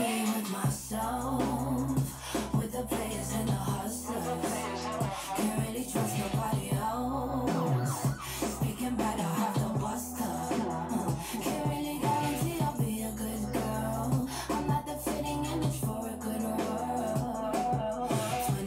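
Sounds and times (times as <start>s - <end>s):
song with deep steady bass and layered instrumentation: 0.0s - 18.6s
emergency vehicle siren wails: 7.5s - 9.9s.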